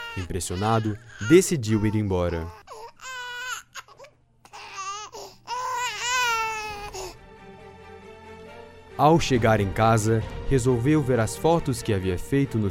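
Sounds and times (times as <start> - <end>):
young child crying: 0.0 - 7.2
speech: 0.2 - 3.1, 9.0 - 12.6.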